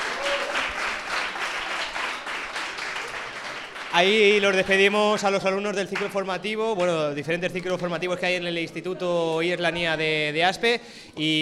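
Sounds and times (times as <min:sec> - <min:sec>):
crowd applauding departing students: 0:00.0 - 0:06.9
speech: 0:04.0 - 0:11.4.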